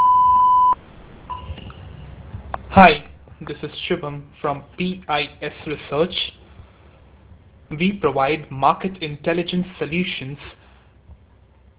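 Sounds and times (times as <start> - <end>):
voicemail beep tone before message recording: 0.0 - 1.7
faint noise: 0.0 - 11.7
speech: 2.8 - 6.4, 7.7 - 10.6.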